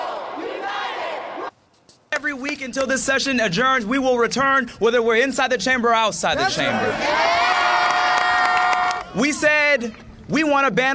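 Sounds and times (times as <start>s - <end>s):
crowd of protesters booing and shouting in a big indoor chamber: 0.0s - 1.5s, 6.4s - 9.8s
speech: 2.3s - 7.5s, 9.2s - 10.9s.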